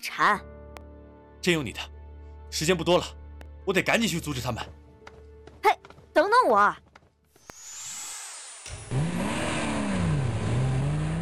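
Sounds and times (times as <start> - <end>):
speech: 0.0 - 0.5, 1.4 - 1.9, 2.5 - 4.8, 6.4 - 6.8
jeep engine revving as it speeds out of a parking lot: 8.9 - 11.1.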